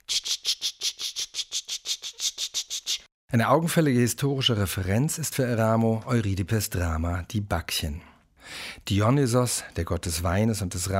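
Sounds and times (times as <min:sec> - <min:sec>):
cicadas in fields of Apulia: 0:00.0 - 0:03.0
speech: 0:03.3 - 0:08.1, 0:08.9 - 0:10.9.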